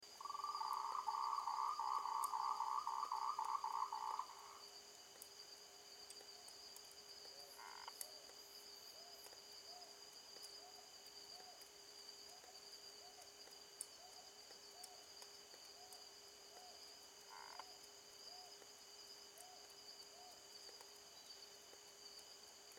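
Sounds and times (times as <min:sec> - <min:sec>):
frog calling: 0:00.2 - 0:04.6, 0:07.5 - 0:08.1, 0:16.6 - 0:17.7.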